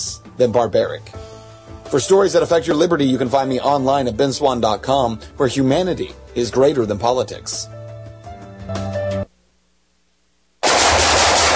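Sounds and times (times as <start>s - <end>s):
speech: 0.3s - 1.2s, 1.9s - 7.8s
rapid automatic gunfire from a shooting session: 10.6s - 11.5s.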